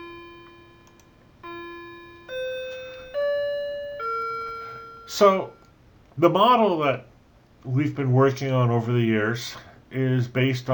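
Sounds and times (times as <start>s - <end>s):
clock chiming bell tones: 0.0s - 5.7s
speech: 5.1s - 5.6s, 6.2s - 10.7s.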